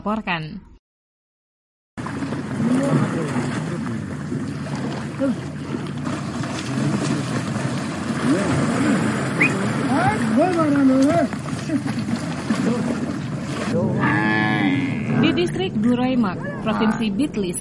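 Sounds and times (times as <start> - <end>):
speech: 0.0 - 0.7, 5.2 - 5.5, 8.3 - 8.9, 10.4 - 17.5
constant wash of splashing water: 2.0 - 16.7
water buffalo lowing while bathing: 2.2 - 10.6, 11.3 - 15.6.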